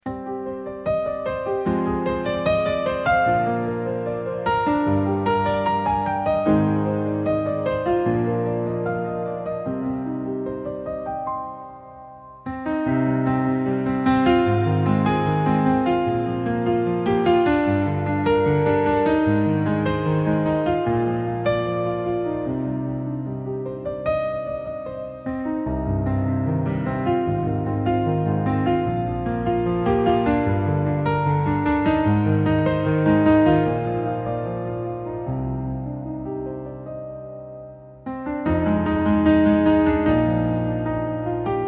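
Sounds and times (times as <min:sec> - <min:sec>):
soft piano: 0:00.0 - 0:41.6.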